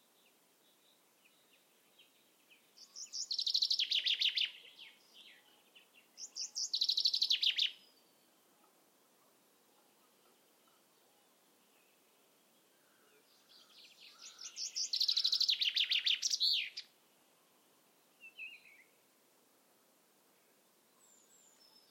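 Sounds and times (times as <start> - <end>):
soft background bird calls: 0.0 - 19.2, 19.8 - 21.8
Common chaffinch singing a descending rattling phrase: 0.1 - 8.4, 9.9 - 16.9.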